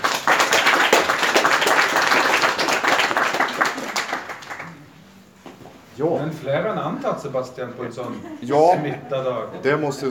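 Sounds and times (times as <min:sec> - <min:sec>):
crowd applauding: 0:00.0 - 0:04.8
speech: 0:06.0 - 0:10.0.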